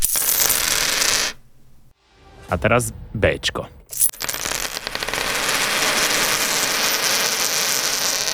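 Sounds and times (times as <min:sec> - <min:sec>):
gold metal coins poured out of a pouch jingling: 0:00.0 - 0:01.3, 0:03.9 - 0:08.3
speech: 0:02.5 - 0:03.8.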